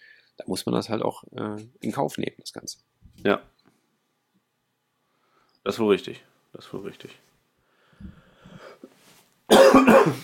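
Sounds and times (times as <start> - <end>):
speech: 0.4 - 3.6, 5.6 - 7.3, 9.5 - 10.2
loud harsh coughing: 9.5 - 10.2
soft low throat clearing: 9.5 - 10.2.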